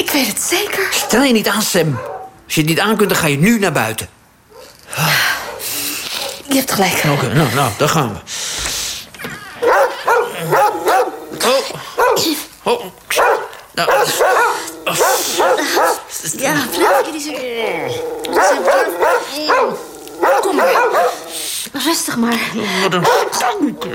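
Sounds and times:
speech: 0:00.2 - 0:04.2, 0:06.5 - 0:08.4, 0:11.5 - 0:23.9
several dogs barking loudly: 0:00.9 - 0:02.5, 0:04.5 - 0:04.8, 0:05.4 - 0:06.5, 0:09.6 - 0:12.5, 0:13.1 - 0:21.6, 0:22.9 - 0:23.9
dogs yipping and whimpering: 0:09.6 - 0:11.2, 0:13.2 - 0:21.5.

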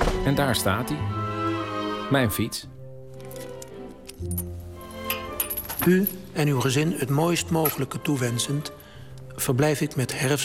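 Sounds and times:
speech: 0:00.2 - 0:01.2, 0:02.1 - 0:02.7, 0:04.2 - 0:04.5, 0:05.8 - 0:08.8, 0:09.4 - 0:10.4
small keys jingling as taken out of a small envelope: 0:03.2 - 0:06.4.

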